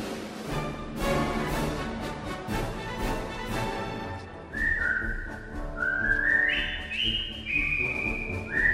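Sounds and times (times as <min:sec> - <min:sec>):
steady rhythmic backing: 0:00.0 - 0:08.7
group of British soldiers whistling a marching tune: 0:04.4 - 0:08.7.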